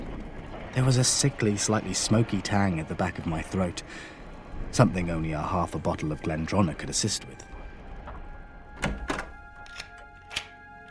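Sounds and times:
speech: 0.7s - 7.5s
door closing: 8.8s - 9.4s
lock being turned: 8.8s - 10.6s.

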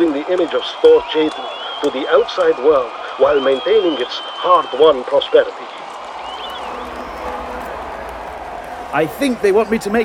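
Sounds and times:
large crowd cheering: 0.0s - 10.0s
speech: 0.3s - 5.8s, 8.9s - 10.0s
faint whistles from a crowd: 0.5s - 9.8s.

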